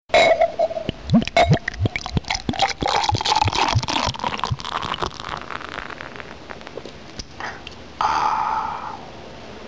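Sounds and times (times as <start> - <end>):
beer sound: 0.2 - 7.0.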